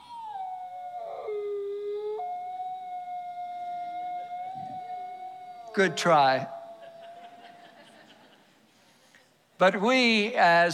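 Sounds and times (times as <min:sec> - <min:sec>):
wolves howling: 0:00.0 - 0:08.0
speech: 0:05.8 - 0:06.6, 0:09.6 - 0:10.7
laughter: 0:06.8 - 0:08.6.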